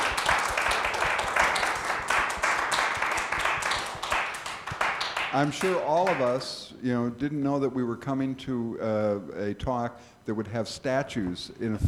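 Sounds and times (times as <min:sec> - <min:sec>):
audience applause: 0:00.0 - 0:06.2
speech: 0:05.3 - 0:11.8.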